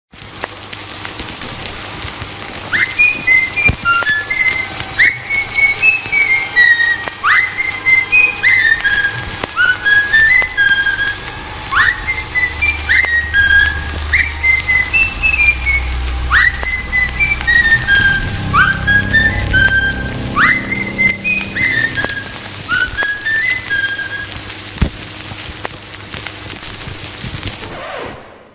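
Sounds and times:
whistle: 2.7 - 24.5
cartoon music: 11.7 - 24.2.

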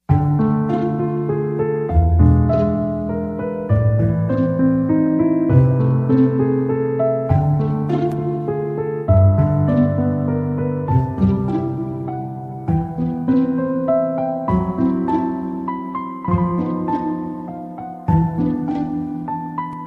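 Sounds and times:
piano holiday ringtone: 0.0 - 19.8.

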